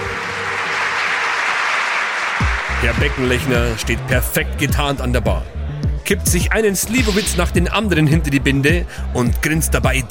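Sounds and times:
crowd applauding: 0.0s - 4.3s
speech: 2.8s - 10.0s.

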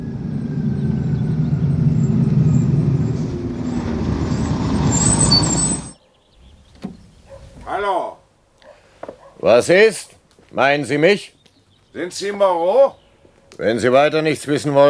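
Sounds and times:
bus pulling in with loud diesel engine rumble: 0.0s - 7.7s
bus brakes squealing and hissing: 0.0s - 7.9s
speech: 9.4s - 14.8s.

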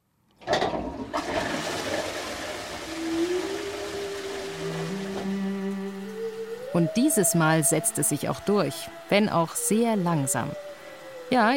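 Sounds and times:
toilet refilling with gurgling and a rising whine: 0.4s - 6.0s
flush toilet flushing with swirling water: 0.4s - 7.2s
speech: 6.8s - 10.7s, 11.3s - 11.5s.

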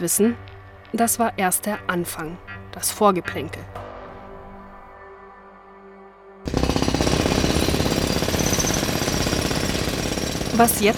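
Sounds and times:
speech: 0.0s - 3.8s, 10.6s - 10.9s
jackhammer pounding during construction work on a house: 6.5s - 10.9s.

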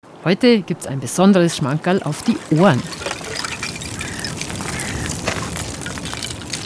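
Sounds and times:
speech: 0.2s - 3.2s
small floating ice shards tinkling in lake water stirred by a swimmer's strokes: 2.0s - 6.6s.

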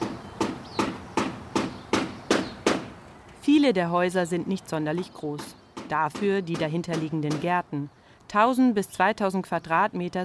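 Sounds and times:
craftsmen hammering while renovating old houses in the streets: 0.0s - 3.0s, 5.0s - 7.6s
speech: 3.4s - 10.2s.

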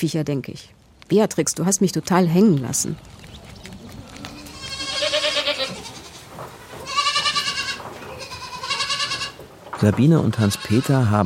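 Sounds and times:
speech: 0.0s - 3.2s, 9.8s - 11.2s
goats bleating: 3.9s - 9.4s, 10.4s - 11.2s.

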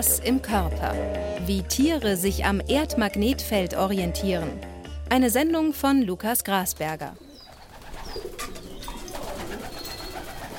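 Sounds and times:
speech: 0.0s - 7.2s
white pigeons cooing and murmuring in a wooden loft: 7.1s - 10.5s
white pigeons wing flapping and rustling: 7.5s - 10.5s.

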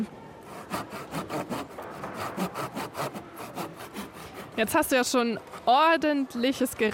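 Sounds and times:
hand saw cutting wood: 0.4s - 4.9s
speech: 4.6s - 6.9s.

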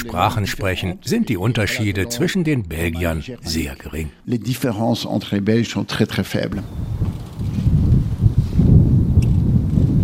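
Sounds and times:
speech: 0.0s - 7.0s
strong wind buffeting the microphone at a racetrack: 6.5s - 10.0s.

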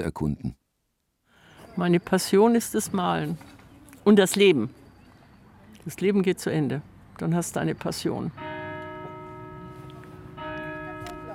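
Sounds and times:
speech: 0.0s - 0.6s, 1.8s - 4.8s, 5.8s - 8.4s
church bells ringing: 7.4s - 11.3s.

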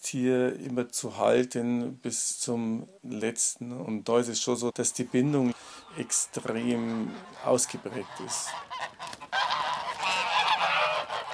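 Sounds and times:
speech: 0.1s - 9.0s
several geese honking: 4.4s - 11.3s.

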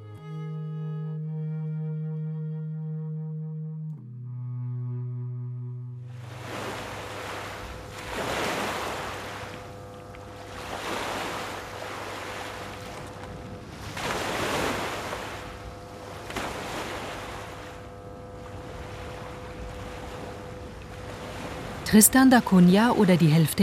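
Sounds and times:
low steady horn-like tone: 0.0s - 23.4s
faint hum: 1.1s - 23.6s
ocean surf waves breaking on the shore: 6.1s - 23.6s
speech: 21.9s - 23.6s.

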